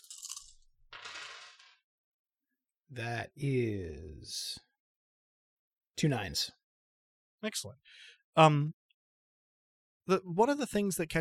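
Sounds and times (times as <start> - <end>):
handful of six dice rattling and clattering across a hard surface: 0.0 - 1.8
speech: 2.9 - 4.7, 6.0 - 6.6, 7.4 - 8.8, 10.1 - 11.2.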